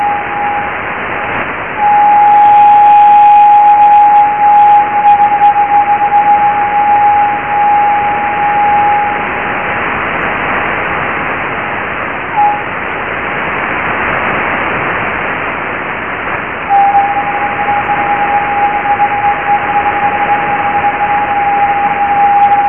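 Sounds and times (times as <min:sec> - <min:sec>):
high-pitched radio echoes off Leonid meteor trails recorded with an aerial: 0:00.0 - 0:09.4, 0:12.4 - 0:12.7, 0:16.7 - 0:22.6
steady radio hiss: 0:00.0 - 0:22.6.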